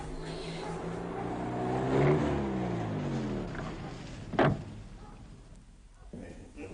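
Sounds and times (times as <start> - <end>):
car engine humming as the vehicle pulls up and halts: 0.0 - 5.8
sharp clunk: 4.3 - 4.8.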